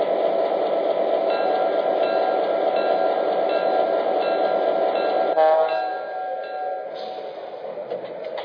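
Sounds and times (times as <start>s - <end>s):
passenger train rumbling into a station: 0.0s - 8.4s.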